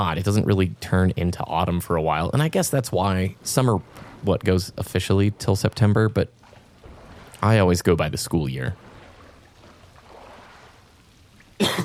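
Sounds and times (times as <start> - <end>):
speech: 0.0 - 6.4, 7.4 - 8.9
room hiss: 0.0 - 11.8
sudden loud harsh cough: 11.6 - 11.8
throat clearing: 11.6 - 11.8.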